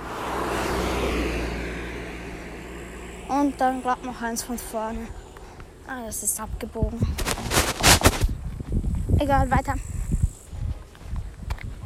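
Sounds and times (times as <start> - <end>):
car approaching from behind with engine rumble and road roar: 0.0 - 9.2
speech: 3.3 - 5.2, 5.9 - 7.2, 9.2 - 9.9.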